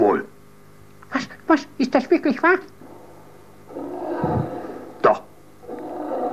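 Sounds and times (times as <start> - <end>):
speech: 0.1 - 0.3, 1.1 - 2.8
lion coming out of the jungle roaring: 2.8 - 6.3.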